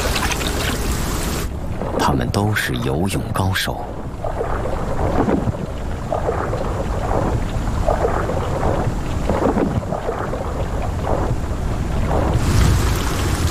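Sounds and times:
dense rain roaring in a thunderstorm: 0.0 - 13.4
gusts of wind buffeting: 0.0 - 13.4
speech: 2.1 - 4.0
low rumbling thunder in a thunderstorm: 3.9 - 13.4.

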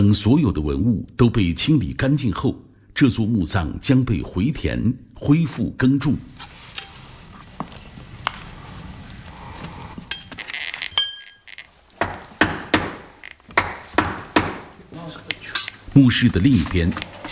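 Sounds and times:
speech: 0.0 - 6.4, 16.0 - 17.3
hammer blows striking brick while dismantling a tomb chamber brick wall: 12.0 - 14.7.

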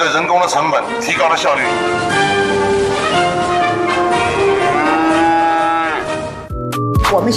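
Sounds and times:
speech: 0.1 - 3.5, 7.1 - 7.3
dairy cows mooing: 2.2 - 6.5.

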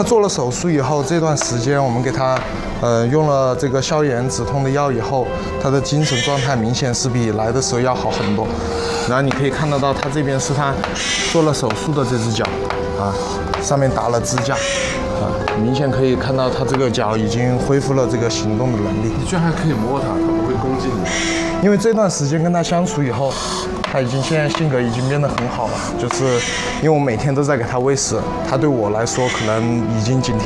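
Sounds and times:
speech: 0.0 - 30.4
injured owl giving a warning call at a rescue hospital in Chengdu: 5.9 - 6.7, 8.0 - 15.8, 20.9 - 21.7, 23.1 - 26.9, 29.0 - 30.0.

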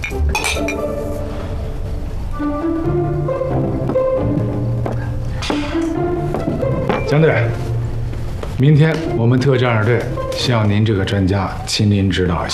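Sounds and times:
glasses clinking in a send-off toast: 0.0 - 1.0, 6.8 - 7.5
steady noise: 0.0 - 12.5
speech: 8.6 - 12.5.

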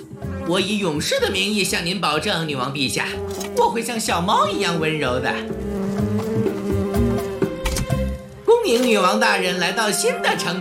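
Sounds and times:
speech: 0.5 - 5.8, 8.7 - 10.5
bees buzzing around a beehive being moved onto a new tree: 2.7 - 8.5.

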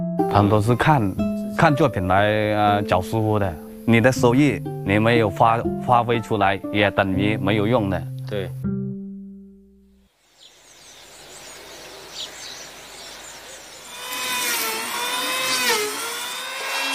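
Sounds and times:
speech: 0.2 - 8.6
power tool sanding wooden columns: 12.4 - 16.9.

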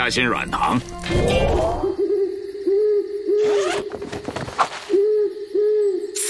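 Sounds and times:
speech: 0.0 - 2.0
owl hooting: 1.3 - 6.2
faint rustling and scratchy noises: 3.4 - 5.0.

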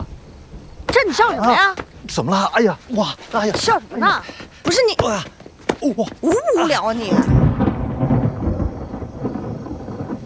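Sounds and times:
speech: 0.9 - 7.4
steady rainfall: 1.2 - 10.2
heavy rumble of thunder: 6.2 - 10.2.

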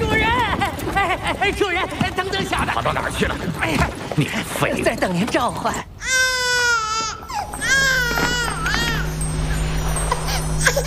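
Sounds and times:
speech: 1.1 - 6.3
infant crying: 6.0 - 10.8.

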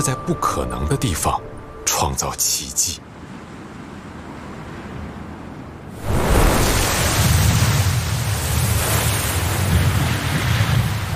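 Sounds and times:
speech: 0.0 - 3.2
strong wind over the sea of the Haitan Strait: 3.0 - 11.1
surf washing in the Haitan Strait: 3.1 - 11.1.

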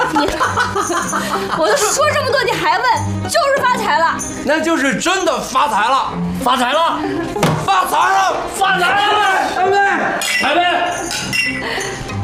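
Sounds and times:
laughter: 0.0 - 2.4
speech: 0.2 - 12.1
several voices cheering in a toast: 7.7 - 10.2
glasses clinking in a toast: 10.2 - 12.0.

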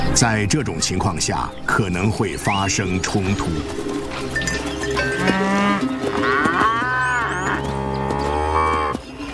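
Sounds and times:
speech: 0.2 - 4.4
herd of cattle mooing: 4.0 - 9.0.

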